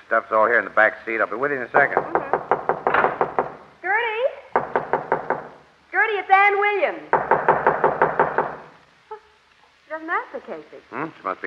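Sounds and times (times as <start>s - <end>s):
speech: 0.1s - 2.3s, 6.5s - 7.2s, 10.0s - 11.4s
knocking on a wooden door: 1.8s - 3.7s, 4.5s - 5.6s, 7.1s - 8.7s.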